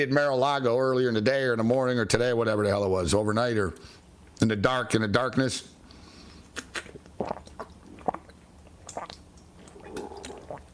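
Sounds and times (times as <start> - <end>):
speech: 0.0 - 5.8, 7.2 - 7.4
faint steady hum: 0.0 - 10.7
person sipping water on a hot day: 5.9 - 10.7
soft swallow: 6.5 - 10.7.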